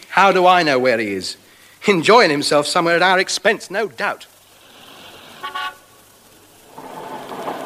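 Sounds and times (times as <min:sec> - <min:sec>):
speech: 0:00.2 - 0:04.3
small scooter horn tooting: 0:05.4 - 0:05.9.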